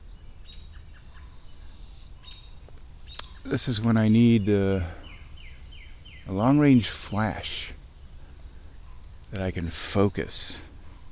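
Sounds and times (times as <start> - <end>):
short bird chirps: 0.0 - 11.0
speech: 3.4 - 5.0, 6.3 - 7.8, 9.3 - 10.7.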